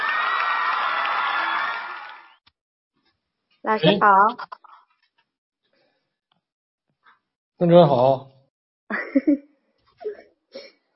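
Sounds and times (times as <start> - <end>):
crowd applauding: 0.0 - 2.4
crowd cheering and whooping: 0.0 - 2.4
speech: 3.7 - 4.6, 7.6 - 8.3, 9.1 - 9.5.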